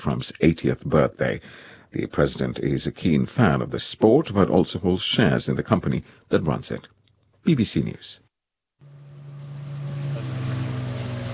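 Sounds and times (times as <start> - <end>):
speech: 0.0 - 8.2
motorboat engine droning as the boat comes in toward shore: 8.8 - 11.3
wash of water: 9.3 - 11.3.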